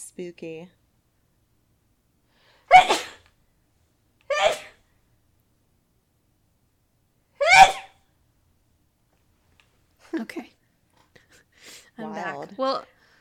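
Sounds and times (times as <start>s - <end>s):
speech: 0.2s - 0.8s, 10.1s - 10.6s, 12.0s - 13.0s
loud sneezes: 2.7s - 3.3s, 4.3s - 4.8s, 7.4s - 8.0s.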